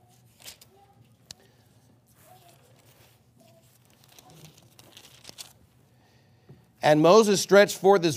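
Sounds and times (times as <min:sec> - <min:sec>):
thin Bible pages turning: 0:00.0 - 0:01.4, 0:02.1 - 0:05.6
speech: 0:06.8 - 0:08.1.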